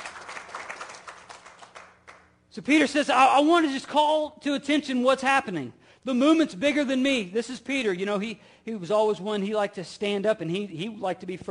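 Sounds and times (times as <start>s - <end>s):
audience clapping: 0.0s - 2.3s
speech: 2.6s - 11.4s.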